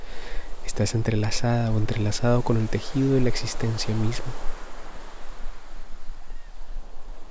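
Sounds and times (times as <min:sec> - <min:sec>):
Pacific Ocean surf: 0:00.0 - 0:07.2
wind: 0:00.0 - 0:07.2
speech: 0:00.8 - 0:04.6.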